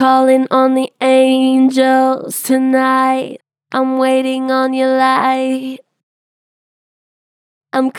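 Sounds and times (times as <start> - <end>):
pitch-flattened vocals singing: 0.0 - 5.9, 7.8 - 7.9.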